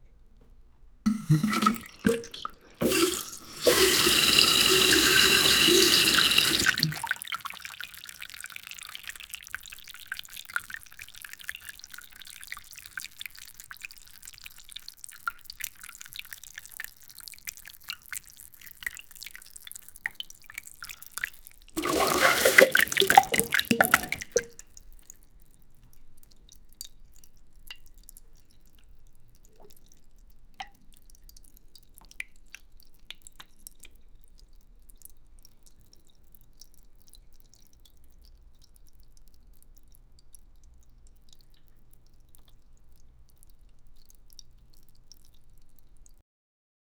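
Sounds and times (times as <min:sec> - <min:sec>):
loud liquid diarrhea: 0:01.1 - 0:08.1, 0:21.8 - 0:24.5.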